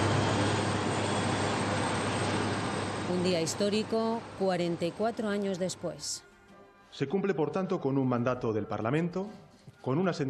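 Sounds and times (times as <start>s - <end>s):
helicopter flying overhead in Spain: 0.0s - 6.1s
speech: 3.1s - 6.3s, 6.9s - 10.2s.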